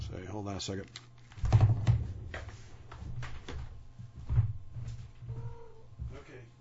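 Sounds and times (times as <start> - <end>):
speech: 0.1 - 1.6
cat meowing softly wanting to go outside: 5.3 - 5.9.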